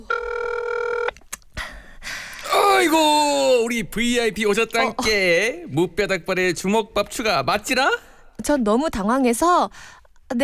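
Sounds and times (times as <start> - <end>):
ringback tone on an outgoing phone call: 0.0 - 1.2
speech: 2.8 - 10.4.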